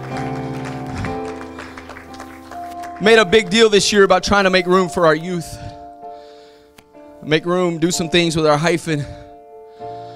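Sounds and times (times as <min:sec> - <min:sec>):
crowd clapping in a steady rhythm during worship: 0:00.0 - 0:03.8
worship music with held tones: 0:00.0 - 0:10.1
speech: 0:03.0 - 0:05.6, 0:07.2 - 0:09.2.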